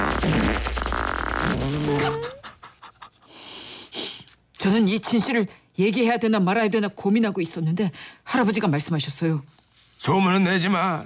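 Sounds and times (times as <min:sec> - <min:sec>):
loud raspy fart: 0:00.0 - 0:02.4
speech: 0:01.6 - 0:02.4, 0:04.6 - 0:11.0.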